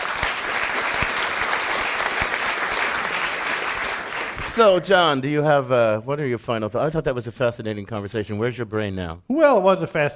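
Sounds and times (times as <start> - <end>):
room full of people applauding: 0.0 - 4.8
speech: 4.6 - 10.1.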